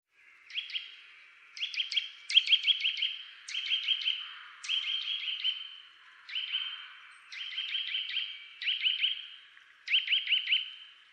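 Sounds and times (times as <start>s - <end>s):
Eurasian nuthatch Sitta europaea calling with ringing whistled notes: 0.5s - 1.0s, 1.6s - 5.7s, 6.3s - 9.3s, 9.9s - 10.8s.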